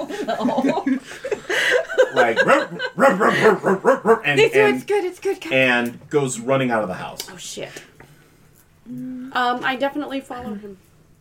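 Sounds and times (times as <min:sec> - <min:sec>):
laughter: 0:00.0 - 0:04.1
speech: 0:00.2 - 0:01.3, 0:02.2 - 0:07.8, 0:08.9 - 0:10.8
person imitating a dog barking: 0:03.0 - 0:04.3.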